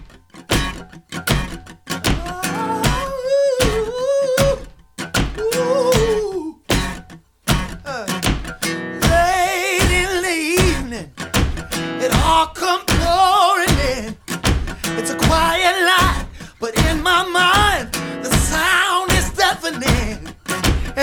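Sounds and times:
song from an album with driving beat and full instrumentation: 0.5 - 5.4, 5.9 - 21.0
person singing: 2.1 - 6.7, 7.9 - 8.3, 9.0 - 11.2, 11.9 - 21.0.

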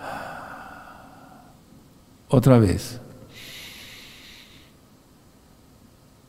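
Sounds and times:
deep exhale during a guided breathing exercise: 0.0 - 1.6, 3.2 - 4.8
speech: 2.3 - 3.5.

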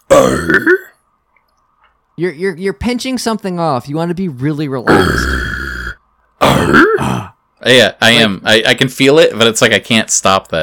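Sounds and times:
rough gritty throat-clearing grunt from false vocal folds: 0.1 - 0.9, 4.9 - 7.4
speech: 2.2 - 5.5, 7.7 - 10.6.

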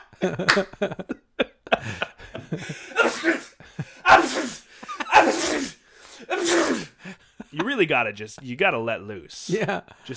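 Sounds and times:
laughter: 0.0 - 5.5, 6.9 - 8.4
speech: 0.1 - 1.2, 7.8 - 10.1
person forcing out fake sneezes: 2.9 - 7.0.

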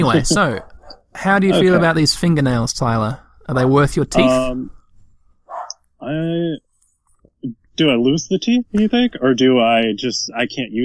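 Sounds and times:
speech: 0.0 - 4.8, 6.0 - 6.7, 7.4 - 10.8
dog barking: 5.5 - 5.8.

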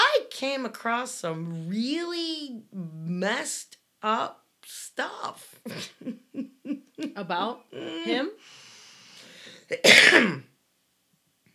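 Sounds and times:
speech: 0.4 - 8.6, 9.7 - 10.5
loud harsh cough: 9.7 - 10.5.

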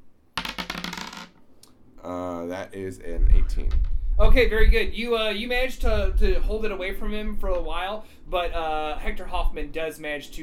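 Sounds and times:
dice clattering across a hard tabletop: 0.4 - 1.4
speech: 2.0 - 10.4.

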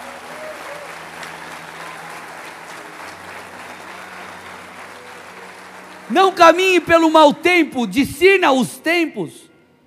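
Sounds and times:
large audience applauding: 0.0 - 7.7
speech: 6.1 - 9.4.

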